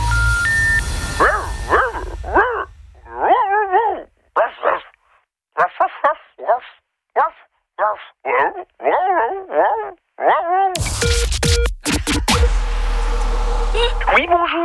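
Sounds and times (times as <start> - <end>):
rush of noise: 0.0 - 3.5, 10.8 - 14.6
human voice imitating a dog barking on an answering machine: 1.3 - 5.0, 5.6 - 10.8.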